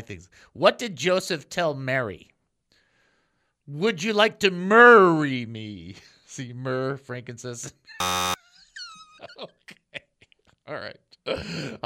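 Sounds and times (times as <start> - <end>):
speech: 0.1 - 2.3, 3.7 - 8.4, 10.7 - 11.8
wrong-answer rejection buzzer: 8.0 - 8.4.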